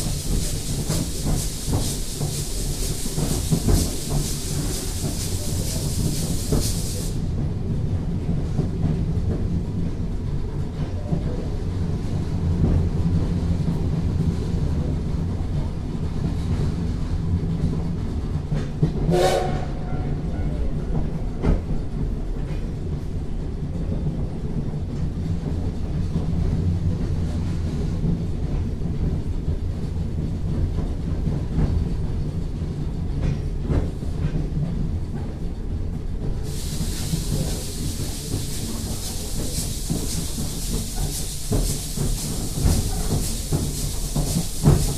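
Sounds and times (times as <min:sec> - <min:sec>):
steam locomotive loud bright steam hiss: 0:00.0 - 0:07.4, 0:36.4 - 0:44.9
steam locomotive running with low rumble: 0:00.0 - 0:44.9.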